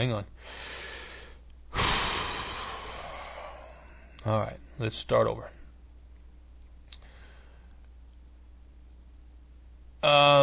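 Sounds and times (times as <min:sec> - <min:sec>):
speech: 0:00.0 - 0:00.8, 0:04.2 - 0:05.6, 0:10.0 - 0:10.4
faint hiss: 0:00.0 - 0:10.4
person taking a deep breath: 0:00.4 - 0:04.2, 0:07.0 - 0:07.8.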